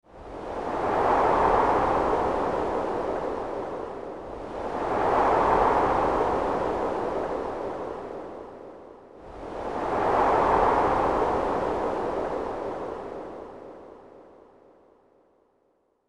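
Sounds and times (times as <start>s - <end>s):
wind in snow: 0.0s - 15.8s.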